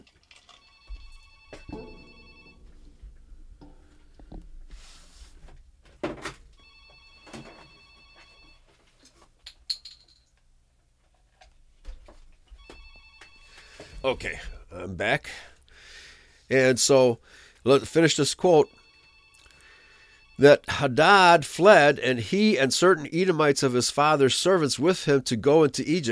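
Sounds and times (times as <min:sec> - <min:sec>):
telephone ringing in trilling bursts: 0:00.3 - 0:04.3, 0:06.5 - 0:08.7, 0:12.6 - 0:14.7, 0:17.7 - 0:21.4
clunks and rattles of a phone being handled: 0:00.8 - 0:06.6
speech: 0:14.0 - 0:15.5, 0:16.5 - 0:18.8, 0:20.4 - 0:26.0.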